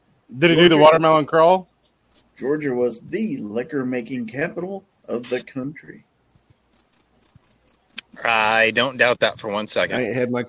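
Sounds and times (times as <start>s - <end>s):
speech: 0.3s - 1.7s, 2.4s - 6.1s, 8.2s - 10.4s
cricket chirping: 2.1s - 2.8s, 6.5s - 10.2s.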